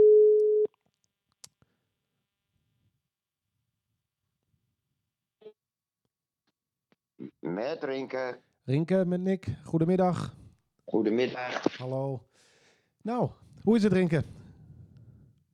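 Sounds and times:
telephone ringing tone while calling out: 0.0s - 0.7s
speech: 7.6s - 12.4s, 13.0s - 14.4s.

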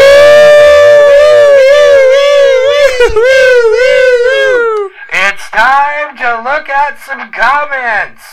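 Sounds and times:
person vocally imitating a wailing siren: 0.0s - 4.9s
speech: 6.2s - 8.3s.

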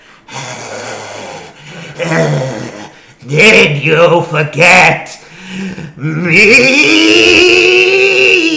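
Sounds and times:
loud heavy raspy breathing: 0.0s - 3.2s, 5.2s - 6.0s
speech: 2.0s - 2.6s, 3.2s - 7.6s.

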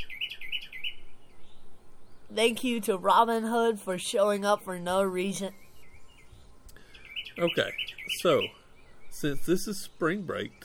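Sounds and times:
small bird chirping with bright high tweets: 0.0s - 10.6s
speech: 2.3s - 5.6s, 7.4s - 8.6s, 9.2s - 10.6s.

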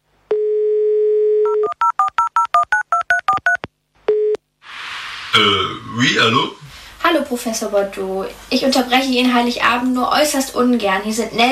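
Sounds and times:
mobile phone dial tone: 0.3s - 4.4s
hiss: 4.6s - 5.4s
speech: 5.4s - 11.5s.

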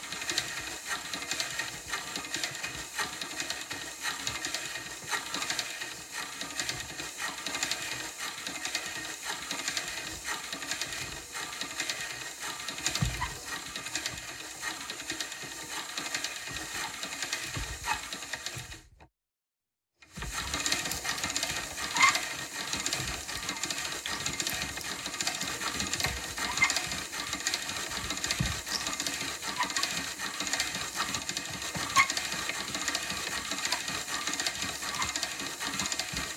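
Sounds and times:
hand-cranked pasta machine grinding: 0.0s - 19.1s, 20.0s - 36.3s.

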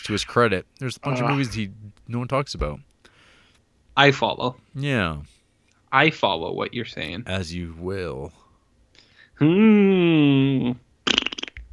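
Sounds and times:
speech: 0.0s - 2.9s, 4.0s - 8.4s, 9.4s - 10.8s
fart noise: 11.0s - 11.7s.

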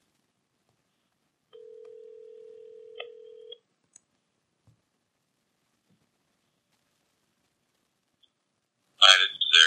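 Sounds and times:
quiet phone line noise: 0.0s - 9.6s
electronic phone ringback tone: 1.6s - 3.6s.

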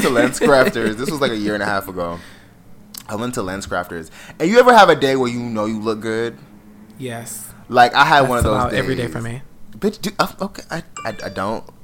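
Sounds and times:
laughter: 0.0s - 1.6s
speech: 0.0s - 2.4s, 3.1s - 11.8s
short bright electronic phone notification chime: 11.0s - 11.8s.

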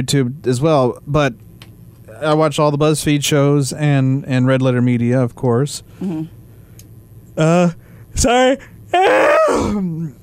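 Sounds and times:
speech: 0.0s - 1.5s, 2.2s - 6.4s, 7.4s - 10.2s
person yawning: 6.0s - 6.3s, 8.9s - 10.2s.

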